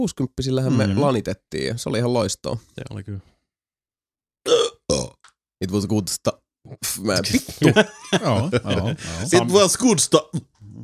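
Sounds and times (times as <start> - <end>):
speech: 0.0 - 3.3, 4.9 - 10.8
burps into a microphone: 4.5 - 5.2
laughter: 7.2 - 9.7.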